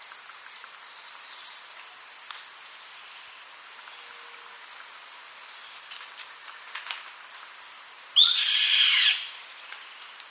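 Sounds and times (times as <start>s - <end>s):
faint high-pitched hiss: 0.0s - 10.2s
bird screech: 8.2s - 9.3s.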